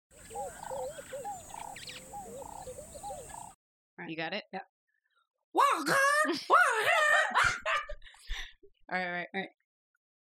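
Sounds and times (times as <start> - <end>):
call of a snake-stomping bird with warbling whistled notes: 0.2 - 3.6
speech: 4.1 - 4.8, 5.8 - 7.8, 8.9 - 9.6.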